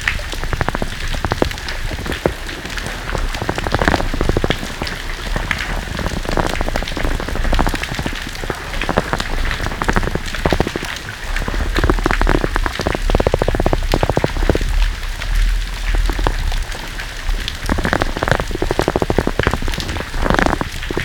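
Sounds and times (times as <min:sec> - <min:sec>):
spinner dolphin clicks: 0:00.1 - 0:21.0.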